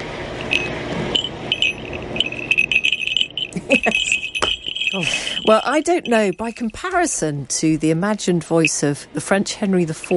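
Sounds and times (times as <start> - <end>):
small hawk's bell jingling: 0.4 - 7.3, 9.9 - 10.1
speech: 3.7 - 4.2, 4.9 - 10.1.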